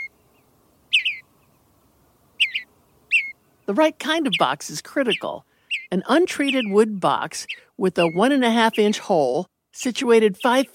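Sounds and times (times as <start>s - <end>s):
bluebird warbling mellow burbled double notes: 0.0s - 1.5s, 2.4s - 9.0s
faint hiss: 0.0s - 10.7s
speech: 3.7s - 10.7s.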